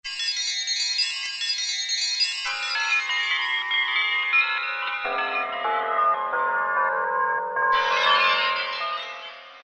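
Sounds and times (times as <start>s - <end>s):
Korg M1 synthesizer wind bells: 0.1s - 9.6s.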